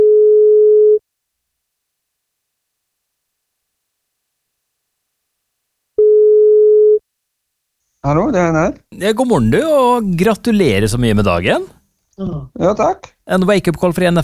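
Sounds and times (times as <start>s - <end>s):
electronic ringback tones from a phone line while placing a call: 0.0s - 1.0s, 6.0s - 7.0s
speech: 8.0s - 14.2s.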